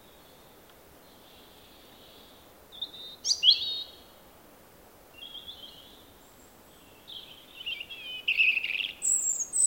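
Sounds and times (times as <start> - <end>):
robin singing: 2.7 - 4.0, 6.8 - 9.6.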